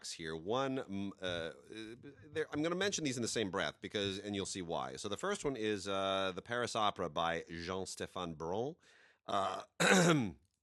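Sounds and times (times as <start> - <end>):
speech: 0.0 - 10.4
coughing: 9.3 - 10.4
throat clearing: 9.4 - 10.4.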